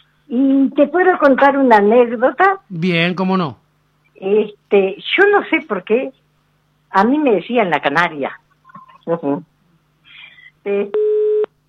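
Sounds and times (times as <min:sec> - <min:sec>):
speech: 0:00.7 - 0:03.6, 0:04.2 - 0:06.2, 0:06.9 - 0:08.4, 0:09.0 - 0:09.5, 0:10.6 - 0:11.0
short bursts of voice on the telephone line: 0:02.7 - 0:03.6
telephone busy tone after a dropped call: 0:11.0 - 0:11.5.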